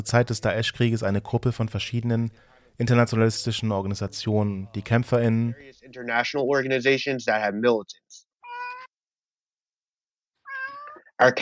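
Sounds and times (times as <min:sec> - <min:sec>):
speech: 0:00.0 - 0:08.2, 0:11.2 - 0:11.3
cat meowing: 0:08.4 - 0:08.9, 0:10.4 - 0:11.1.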